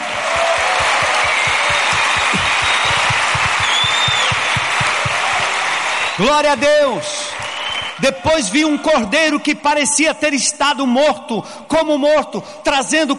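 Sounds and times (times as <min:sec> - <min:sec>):
rhythmic low thumps of many hands keeping a beat: 0:00.0 - 0:06.6
faint cheers and whistles from a congregation: 0:00.0 - 0:08.4
congregation applauding: 0:00.0 - 0:09.0
speech: 0:06.2 - 0:07.4, 0:08.0 - 0:13.1.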